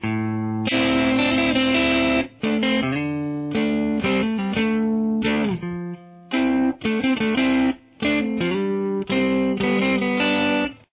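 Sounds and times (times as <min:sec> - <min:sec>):
distorted lead guitar intro: 0:00.0 - 0:10.9.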